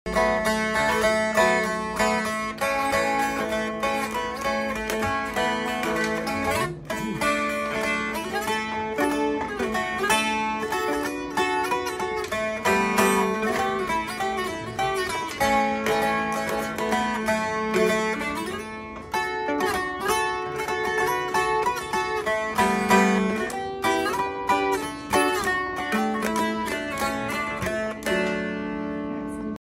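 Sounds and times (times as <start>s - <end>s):
Appalachian dulcimer playing: 0.1s - 29.6s.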